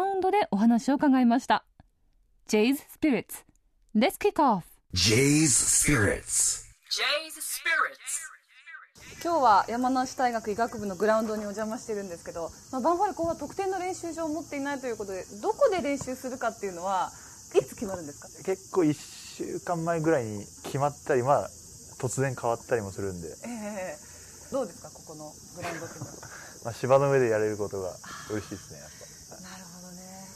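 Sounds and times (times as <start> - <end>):
speech: 0.2 - 1.7, 2.5 - 8.2, 9.2 - 29.6
cicadas buzzing at a university medical school football ground in Yamanashi on a hot summer day: 5.0 - 30.3.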